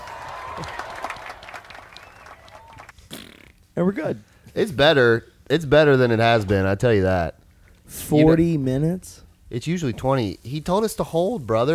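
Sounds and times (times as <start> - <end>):
small group clapping: 0.0 - 3.0
speech: 0.6 - 0.8, 3.8 - 11.7.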